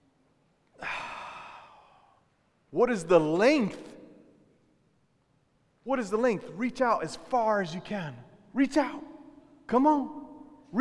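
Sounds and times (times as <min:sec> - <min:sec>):
group of people taking a deep breath together: 0:00.8 - 0:02.2
speech: 0:02.7 - 0:03.9, 0:05.8 - 0:09.1, 0:09.7 - 0:10.7.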